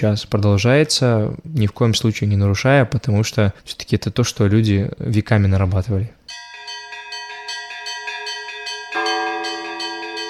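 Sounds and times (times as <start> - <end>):
speech: 0.0 - 6.2
old church bells pealing for the patronal feast of the Transfiguration in Porplishche: 6.3 - 10.2.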